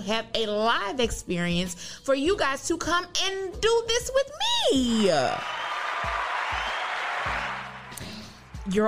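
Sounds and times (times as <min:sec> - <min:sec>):
speech: 0:00.0 - 0:06.2, 0:08.7 - 0:08.8
audience applause: 0:05.4 - 0:08.4.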